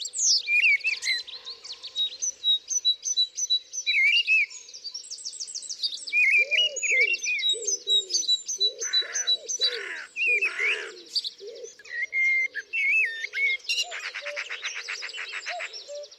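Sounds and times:
several birds singing in a garden: 0.0 - 16.1
dove cooing in a garden: 6.2 - 16.1.

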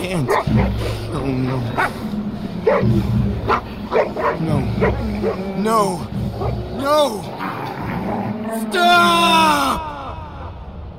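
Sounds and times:
speech: 0.0 - 7.5, 8.1 - 10.0
several dogs barking and yipping: 0.1 - 5.6.

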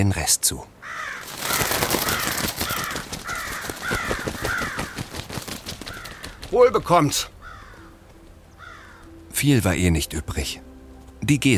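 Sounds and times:
speech: 0.0 - 1.2, 6.6 - 7.3, 9.4 - 11.5
crows cawing: 0.8 - 9.2
constant rustling noise: 1.0 - 9.0.

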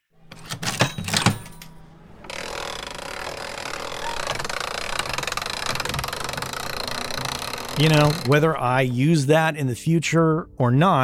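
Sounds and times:
pressed penny machine gears clanking and rattling: 0.2 - 9.0
pressed penny machine grinding whir: 1.8 - 8.8
speech: 7.8 - 11.0.

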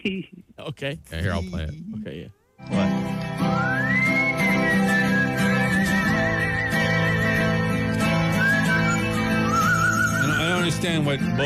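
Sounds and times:
speech: 0.0 - 3.9, 10.7 - 11.4
loud dense buzzing background: 0.0 - 9.5
bird whistling call: 3.5 - 11.0.

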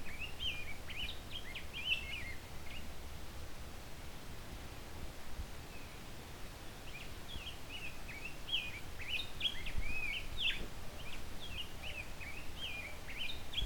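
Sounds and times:
male Rose-breasted Grosbeak singing quietly: 0.0 - 2.9, 5.7 - 13.6
low continuous background noise: 0.0 - 13.6.

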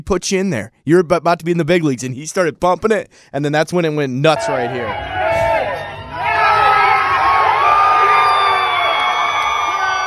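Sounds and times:
speech: 0.0 - 5.2
loud crowd cheering whooping and yelling: 4.3 - 10.0.

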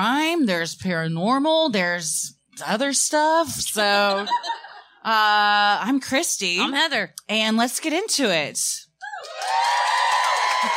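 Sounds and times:
speech: 0.0 - 8.8
laughter: 3.9 - 5.0
live audience cheering and whooping: 9.0 - 10.7.

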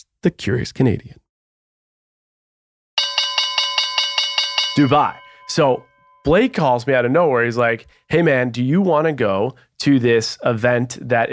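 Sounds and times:
speech: 0.0 - 1.2, 4.8 - 11.3
loud bright bell ringing rapidly: 3.0 - 7.9.

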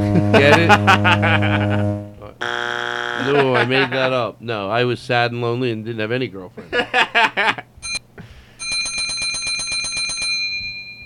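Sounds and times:
laughter: 0.0 - 2.3, 3.2 - 4.3, 6.6 - 7.7
speech: 0.2 - 2.6, 3.2 - 7.7
bell ringing: 7.8 - 8.0, 8.6 - 11.0.

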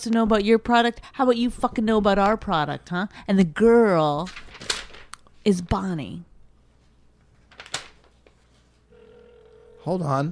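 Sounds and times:
speech: 0.0 - 4.8, 5.4 - 6.3, 9.8 - 10.3
quiet hum: 0.0 - 10.3
telephone ringing with steady electronic tone: 8.9 - 10.3.

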